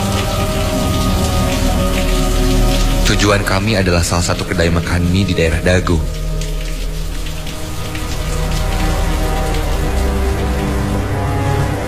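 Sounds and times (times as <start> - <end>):
rain pattering at night heard from a sedan car: 0.0 - 11.8
speech: 3.1 - 6.2.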